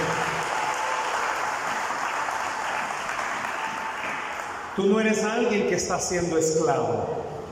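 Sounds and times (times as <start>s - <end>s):
crowd applauding at night: 0.0s - 4.8s
speech: 4.8s - 7.3s.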